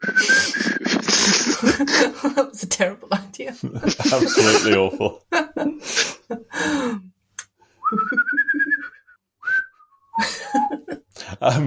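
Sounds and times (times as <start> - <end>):
person whistling a jaunty tune: 0.0 - 1.1, 7.8 - 10.8
laughter: 0.2 - 2.5, 3.6 - 6.5, 10.2 - 11.0
speech: 1.7 - 6.0, 11.4 - 11.6.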